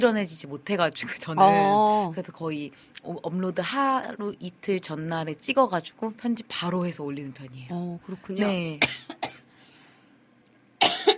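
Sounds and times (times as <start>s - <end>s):
speech: 0.0s - 9.2s
person coughing: 8.8s - 9.4s, 10.8s - 11.1s.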